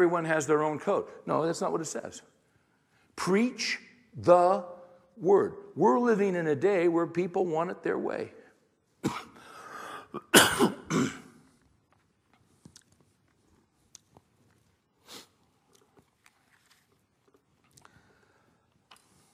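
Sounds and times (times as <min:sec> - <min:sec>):
speech: 0:00.0 - 0:02.4, 0:03.2 - 0:08.4
throat clearing: 0:09.0 - 0:09.4, 0:10.1 - 0:11.4
rough cough: 0:09.0 - 0:11.4.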